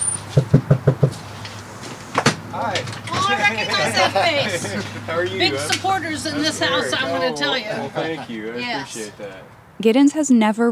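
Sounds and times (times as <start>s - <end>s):
knocking on a house door during door-to-door campaigning: 0.4s - 1.2s
speech: 2.6s - 10.6s
laughter: 3.1s - 9.5s.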